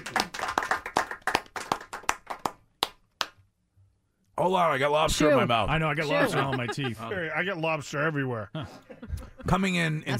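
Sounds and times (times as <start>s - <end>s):
small group applauding: 0.0s - 3.4s
speech: 4.4s - 10.1s
laughter: 6.0s - 7.5s, 8.6s - 10.1s.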